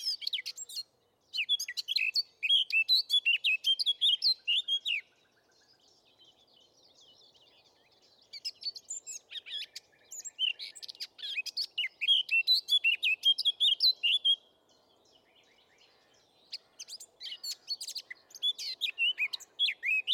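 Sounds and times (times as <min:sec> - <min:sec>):
Eurasian blackcap Sylvia atricapilla singing a rapid varied warble: 0:00.0 - 0:20.1.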